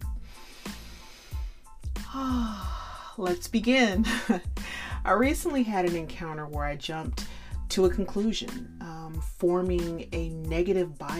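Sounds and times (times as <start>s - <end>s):
gasping breath: 0.1s - 3.2s, 4.6s - 5.0s, 7.3s - 7.6s
person breathing in sharply through the nose and mouth: 0.2s - 3.0s, 4.6s - 5.0s
speech: 3.2s - 11.1s.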